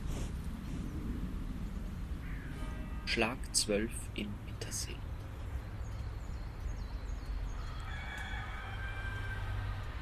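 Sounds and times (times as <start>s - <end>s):
faint chirping birds: 0.0s - 10.0s
steady low outdoor rumble: 0.0s - 10.0s
speech: 3.1s - 5.1s
rooster crowing: 7.4s - 10.0s.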